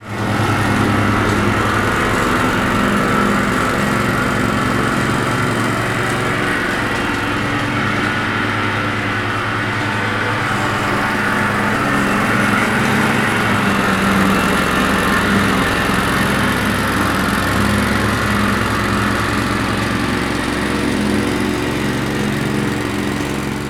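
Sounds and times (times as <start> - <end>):
ride-on lawnmower: 0.0 - 23.6.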